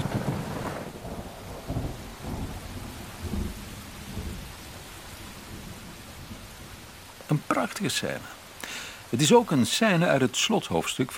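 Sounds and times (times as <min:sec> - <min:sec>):
low rumbles of thunder: 0:00.0 - 0:07.7
constant hiss of pattering rain: 0:00.0 - 0:11.1
speech: 0:07.3 - 0:08.4, 0:09.1 - 0:11.1.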